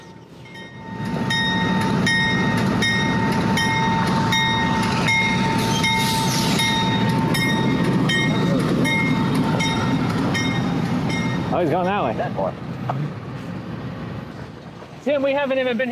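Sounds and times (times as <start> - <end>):
freight locomotive heavy engine drone: 0.0 - 15.8
speech: 11.6 - 13.2, 15.1 - 15.9.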